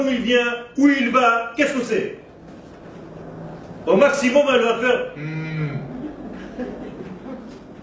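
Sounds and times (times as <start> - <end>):
speech: 0.0 - 2.2, 3.9 - 5.8
man imitating a cow in a meadow mooing: 5.2 - 5.9
laughter: 5.8 - 7.8.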